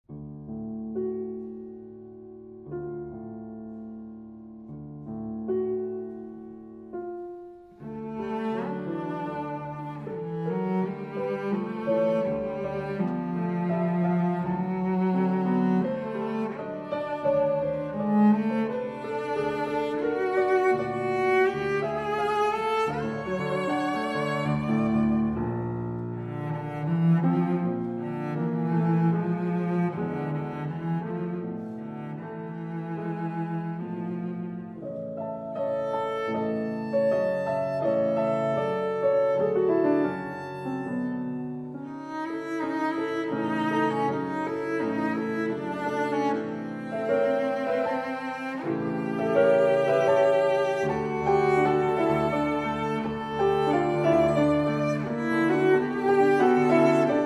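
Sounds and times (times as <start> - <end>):
cello in a cello sonata: 0.0 - 57.2
piano in a cello sonata: 0.0 - 57.2.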